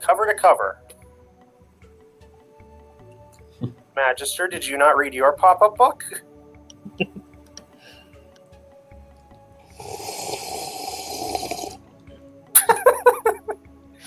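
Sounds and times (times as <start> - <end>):
speech: 0.0 - 0.9, 3.6 - 6.3
laughter: 6.8 - 7.3, 12.6 - 13.6
sharp clicking gulping sounds: 9.7 - 11.8
slurping sip of a drink: 9.7 - 11.8.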